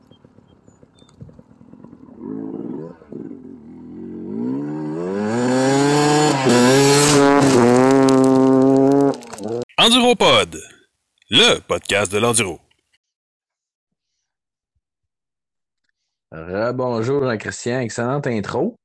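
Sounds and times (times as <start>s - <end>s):
motorbike-like engine revving in intermission jingle: 1.4s - 9.6s
speech: 10.1s - 10.6s, 11.3s - 12.6s, 16.8s - 18.8s.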